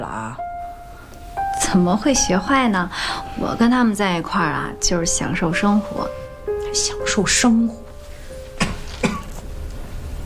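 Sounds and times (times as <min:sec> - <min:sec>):
speech: 0:01.7 - 0:07.8
person coughing: 0:08.6 - 0:09.4.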